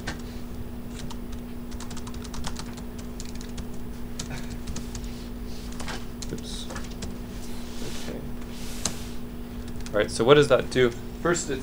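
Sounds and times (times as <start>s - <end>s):
steady low electrical hum: 0.0s - 11.6s
typing on a computer keyboard: 1.0s - 5.0s, 5.7s - 7.1s, 9.7s - 10.0s
speech: 10.0s - 11.6s.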